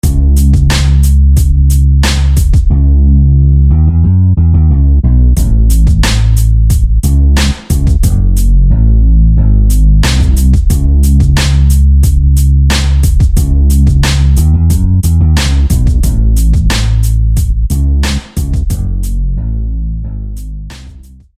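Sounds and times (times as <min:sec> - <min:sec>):
dark bass: 0:00.0 - 0:21.3.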